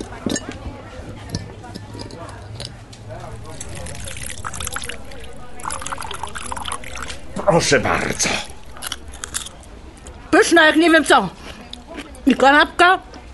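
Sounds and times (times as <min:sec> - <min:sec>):
voice murmuring: 0:03.1 - 0:08.8
water pouring from a bottle over a radish being rinsed: 0:03.1 - 0:09.5
speech: 0:07.5 - 0:08.5, 0:10.4 - 0:11.4, 0:12.2 - 0:13.1.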